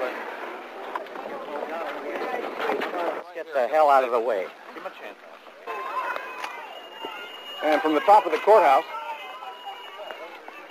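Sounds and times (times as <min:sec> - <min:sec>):
speech: 0:03.4 - 0:05.3, 0:07.6 - 0:09.0
crowd of female jail inmates shouting encouragement and cheering: 0:05.7 - 0:10.6.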